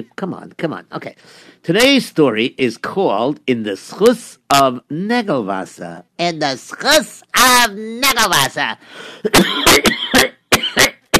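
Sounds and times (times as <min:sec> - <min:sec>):
speech: 0:00.0 - 0:10.9
harsh coughing: 0:09.0 - 0:11.1.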